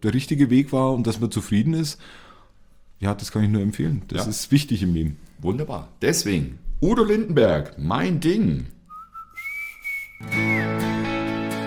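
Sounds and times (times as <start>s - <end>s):
speech: 0.0s - 2.3s, 3.0s - 8.8s, 10.2s - 10.7s
person whistling a tune: 8.9s - 11.0s
full band playing with steady harmonic backing: 10.2s - 11.6s.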